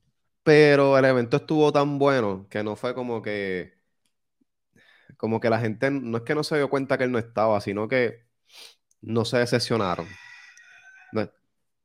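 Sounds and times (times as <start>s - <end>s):
speech: 0.5s - 3.8s, 5.2s - 10.2s, 11.1s - 11.4s
chicken calling ending in a harsh squawk: 9.7s - 11.3s.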